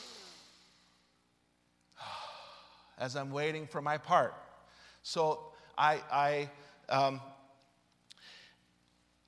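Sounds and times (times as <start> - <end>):
person taking deep relaxing breaths while waiting to sing a duet: 2.0 - 3.0, 8.1 - 8.6
speech: 3.0 - 4.4, 5.0 - 7.4.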